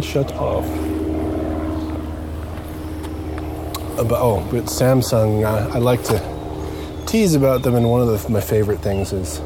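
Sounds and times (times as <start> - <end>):
airplane engine droning overhead: 0.0 - 9.4
speech: 0.1 - 1.0, 4.0 - 6.3, 7.1 - 9.4.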